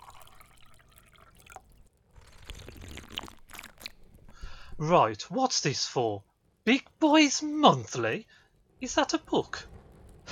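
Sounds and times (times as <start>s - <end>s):
wine poured into a glass: 0.0s - 4.0s
speech: 4.8s - 9.7s.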